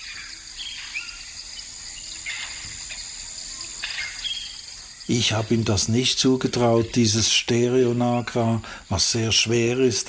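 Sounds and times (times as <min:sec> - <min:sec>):
short bird calls in a mangrove swamp: 0:00.0 - 0:05.0
crickets chirping in a mangrove swamp: 0:00.0 - 0:10.0
high insect drone in a mangrove swamp: 0:00.0 - 0:10.0
speech: 0:05.1 - 0:10.0.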